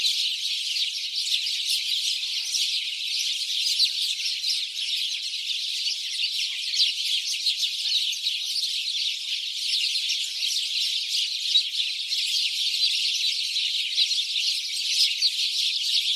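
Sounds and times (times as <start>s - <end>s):
house sparrows Passer domesticus chirping: 0.0s - 16.1s.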